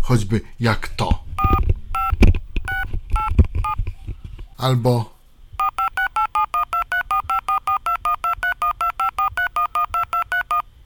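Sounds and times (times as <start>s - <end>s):
speech: 0.1s - 1.2s, 4.6s - 5.1s
DTMF telephone dialing tones from a dialer: 1.4s - 3.8s, 5.6s - 10.7s.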